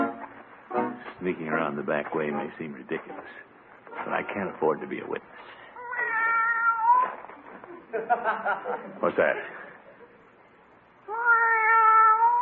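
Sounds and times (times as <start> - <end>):
speech: 1.2 - 5.6, 7.9 - 9.6
cat meowing: 5.8 - 7.3, 11.1 - 12.4
laughter: 7.4 - 10.2.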